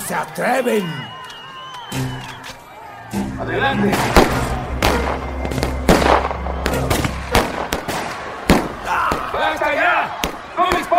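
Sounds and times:
people shouting: 0.0s - 10.9s
speech: 0.1s - 1.2s, 1.9s - 2.3s, 3.1s - 5.7s, 9.4s - 10.9s
gunshots fired into the air to scare off a crowd: 3.8s - 10.9s.

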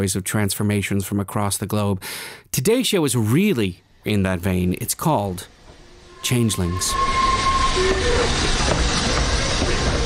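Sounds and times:
speech: 0.0s - 5.6s, 6.2s - 7.2s
electric train rumbling into the central station in Krakow, Poland: 3.8s - 10.0s
electric train wheels squealing while braking: 5.5s - 10.0s.

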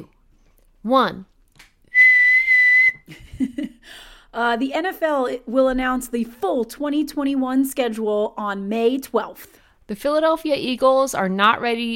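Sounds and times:
speech: 0.8s - 1.3s, 3.1s - 11.9s
loud shrill whistle blast: 1.9s - 3.0s.

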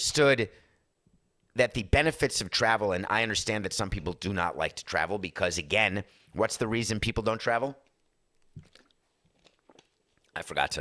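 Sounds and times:
speech: 0.0s - 0.7s, 1.6s - 7.8s, 10.4s - 10.8s
person gulping a drink: 8.4s - 10.4s
wet mouth clicks: 8.4s - 10.4s.

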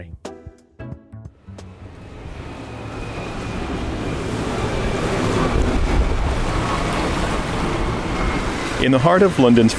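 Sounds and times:
boat engine rumble on a river: 1.4s - 9.7s
wind: 1.4s - 9.7s
rush of river water: 2.4s - 9.7s
speech: 8.8s - 9.7s.

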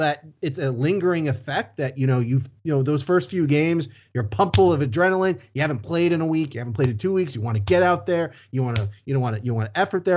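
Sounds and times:
speech: 0.0s - 10.1s
fist slapping a surface for emphasis: 4.4s - 4.8s, 8.8s - 9.0s.

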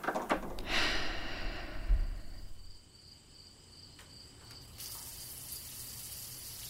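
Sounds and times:
crickets chirping: 0.7s - 6.6s
outdoor shower water spraying: 4.8s - 6.6s.

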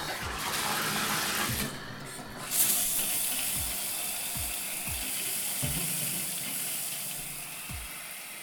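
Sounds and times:
water spraying from a shower head: 0.0s - 8.4s.

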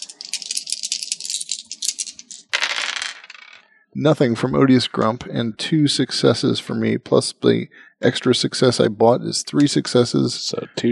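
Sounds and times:
dice rattling in a hand or cup: 0.0s - 3.6s
speech: 4.0s - 10.9s.

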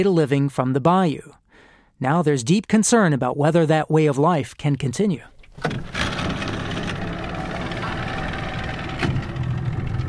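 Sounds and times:
speech: 0.0s - 1.4s, 2.0s - 6.1s
knocks and clunks: 5.3s - 10.0s
small boat engine idling at a landing: 5.3s - 10.0s.

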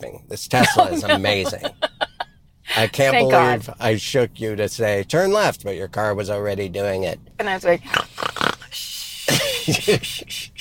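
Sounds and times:
speech: 0.3s - 1.9s, 2.8s - 8.2s, 9.7s - 10.5s
laughter: 0.6s - 2.2s, 9.3s - 10.5s
person imitating a dog's snoring: 7.9s - 8.8s.

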